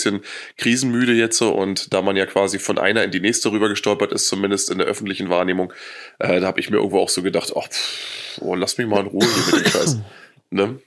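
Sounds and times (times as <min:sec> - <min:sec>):
speech: 0:00.0 - 0:10.8
man coughing: 0:09.2 - 0:10.2.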